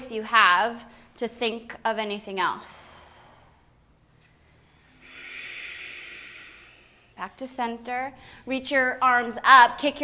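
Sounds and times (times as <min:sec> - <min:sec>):
speech: 0:00.1 - 0:03.0, 0:07.2 - 0:10.0
loud forceful ujjayi exhale during yoga: 0:04.8 - 0:07.2
short hiss of breath: 0:04.8 - 0:07.2.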